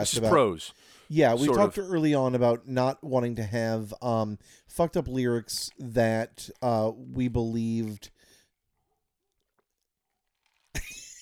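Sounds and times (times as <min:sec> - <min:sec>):
speech: 0:00.0 - 0:08.2
person gulping a drink: 0:09.3 - 0:10.8.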